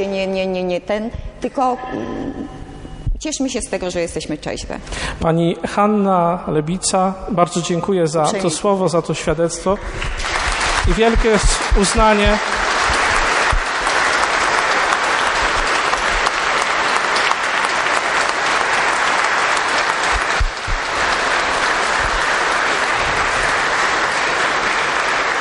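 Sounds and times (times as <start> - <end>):
speech: 0.0 - 2.6, 3.2 - 12.6
audience applause: 9.7 - 25.3.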